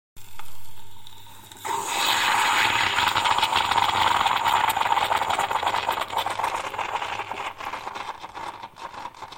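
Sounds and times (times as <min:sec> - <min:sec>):
espresso machine: 0:00.2 - 0:07.5.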